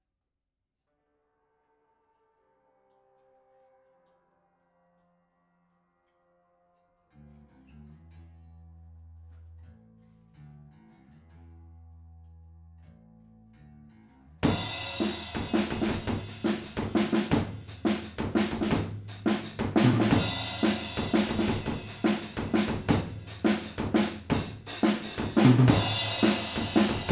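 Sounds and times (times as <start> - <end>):
drums: 14.4 - 27.1.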